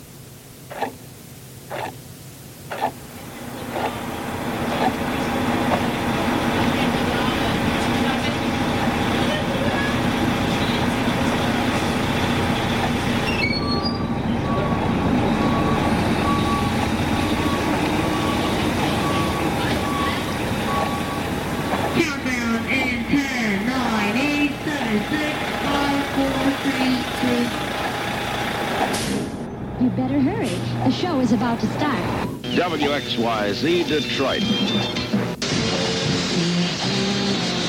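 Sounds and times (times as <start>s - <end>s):
bus engine drone heard from inside a moving bus: 0.0s - 37.6s
road rumble of a moving bus: 0.0s - 37.6s
high beeps: 13.2s - 21.3s
speech: 32.8s - 35.2s.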